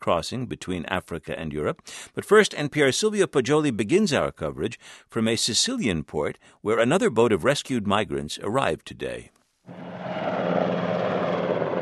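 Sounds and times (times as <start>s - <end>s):
speech: 0.0s - 10.0s
helicopter flying over a port: 9.7s - 11.8s.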